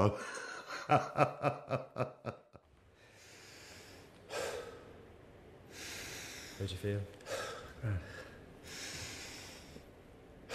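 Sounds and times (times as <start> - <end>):
speech: 0.0 - 2.4, 6.6 - 7.2, 7.8 - 8.1
person breathing deeply with snorting intake and breathy exhale: 2.9 - 5.0, 5.7 - 9.9.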